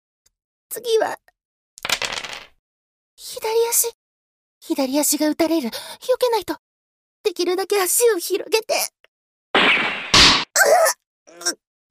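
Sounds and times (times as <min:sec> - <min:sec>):
speech: 0:00.7 - 0:01.3, 0:03.3 - 0:04.0, 0:04.7 - 0:06.6, 0:07.2 - 0:09.0, 0:10.6 - 0:11.6
dice clattering across a hard surface: 0:01.8 - 0:02.6.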